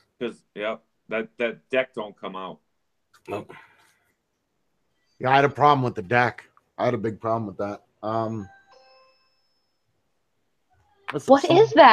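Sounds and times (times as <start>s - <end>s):
speech: 0.2s - 2.6s, 3.2s - 3.7s, 5.2s - 8.6s, 11.1s - 11.9s
smart video doorbell chime: 8.1s - 9.9s.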